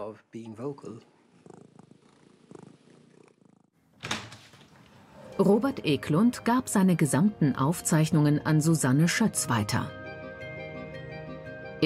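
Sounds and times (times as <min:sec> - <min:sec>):
speech: 0:00.1 - 0:01.2, 0:05.4 - 0:10.0
domestic cat purring: 0:00.8 - 0:03.9.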